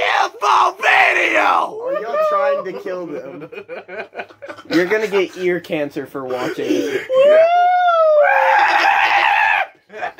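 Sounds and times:
person screaming: 0:00.0 - 0:02.8, 0:06.8 - 0:10.1
laughter: 0:01.8 - 0:05.6, 0:09.8 - 0:10.1
speech: 0:02.6 - 0:04.0, 0:04.7 - 0:07.6.

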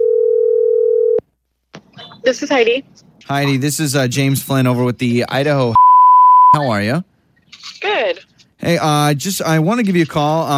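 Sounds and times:
telephone dial tone: 0:00.0 - 0:01.2
speech: 0:02.2 - 0:05.8, 0:06.5 - 0:10.5.

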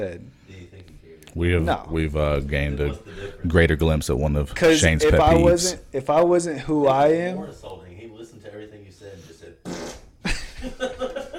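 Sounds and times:
speech: 0:00.0 - 0:00.6, 0:01.3 - 0:07.8
loud raspy fart: 0:09.6 - 0:10.2
laughter: 0:10.2 - 0:11.3.

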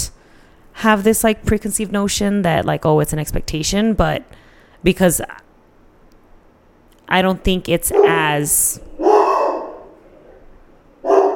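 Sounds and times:
speech: 0:00.8 - 0:05.4, 0:07.1 - 0:08.9
pet dog barking: 0:07.9 - 0:08.2, 0:09.0 - 0:10.0, 0:11.0 - 0:11.3.

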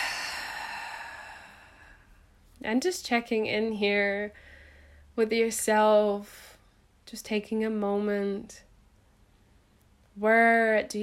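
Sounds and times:
slow soft breath during a guided breathing exercise: 0:00.0 - 0:02.2
speech: 0:02.6 - 0:04.5, 0:05.2 - 0:06.5, 0:07.1 - 0:08.6, 0:10.2 - 0:11.0.

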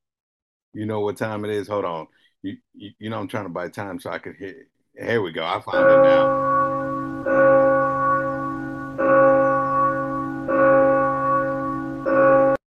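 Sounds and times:
speech: 0:00.7 - 0:06.7
church bells ringing: 0:05.7 - 0:12.6.

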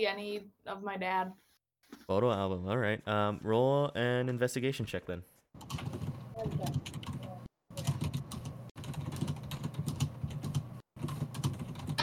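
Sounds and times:
speech: 0:00.0 - 0:01.5, 0:02.1 - 0:06.9
fast forceful typing on a computer keyboard: 0:05.6 - 0:12.0.

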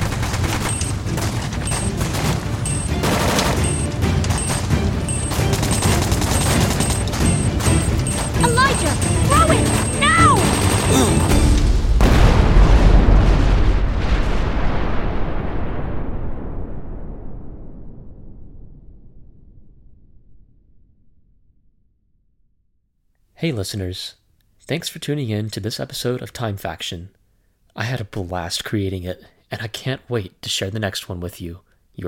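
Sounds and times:
grenade explosion in a firefight beside a burning cart: 0:00.0 - 0:08.2, 0:08.9 - 0:19.4
dense rapid gunfire in a firefight: 0:00.0 - 0:13.5
speech: 0:23.4 - 0:27.2, 0:27.8 - 0:32.0.

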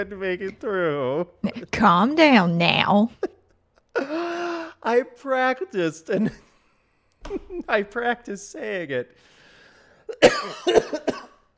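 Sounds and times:
speech: 0:00.0 - 0:03.3, 0:04.8 - 0:06.5, 0:07.2 - 0:09.4, 0:10.1 - 0:11.3
harsh coughs into a microphone: 0:10.1 - 0:11.5.

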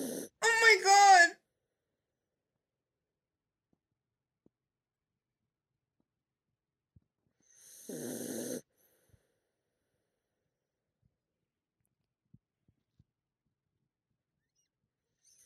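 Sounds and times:
female dog snoring: 0:00.0 - 0:00.3, 0:07.4 - 0:08.7.

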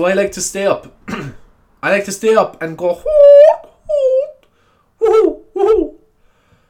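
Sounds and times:
speech: 0:00.0 - 0:03.2
person imitating owl hoots: 0:03.0 - 0:06.1.

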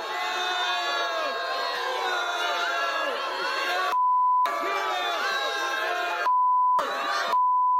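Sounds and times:
loud crowd chanting and shouting in unison: 0:00.0 - 0:07.4
high-pitched censor bleeps: 0:04.0 - 0:04.5, 0:06.3 - 0:07.7.

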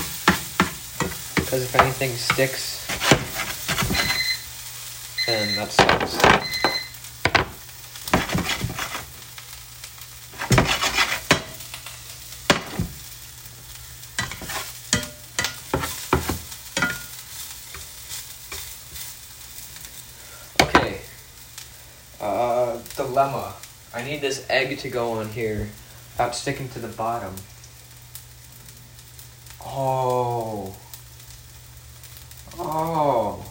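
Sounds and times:
scraping and stirring in a frying pan: 0:00.0 - 0:04.5, 0:05.2 - 0:09.3, 0:10.2 - 0:13.1, 0:13.7 - 0:21.1
onions sautéing in a frying pan: 0:00.0 - 0:33.4
speech: 0:01.5 - 0:03.2, 0:05.3 - 0:06.5, 0:23.2 - 0:27.5, 0:29.8 - 0:30.8.

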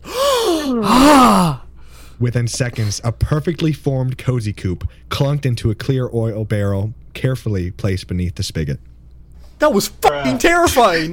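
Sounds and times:
person gasping in shock: 0:00.0 - 0:02.2
speech: 0:02.2 - 0:08.9, 0:09.6 - 0:11.1.

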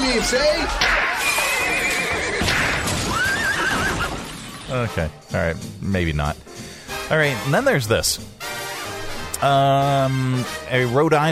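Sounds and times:
speech: 0:00.2 - 0:01.0, 0:04.7 - 0:06.5, 0:07.1 - 0:08.4, 0:09.4 - 0:11.3
horse neighing: 0:00.9 - 0:04.5.

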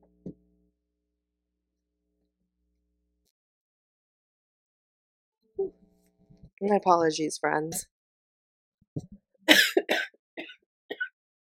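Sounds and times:
speech: 0:06.6 - 0:08.0
harsh wet coughing: 0:09.5 - 0:11.2
person clearing throat: 0:09.5 - 0:11.2.

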